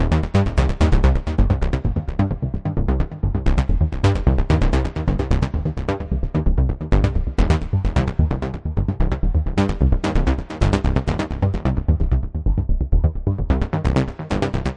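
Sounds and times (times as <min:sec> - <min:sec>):
big analog bass filtering around: 0:00.0 - 0:14.7.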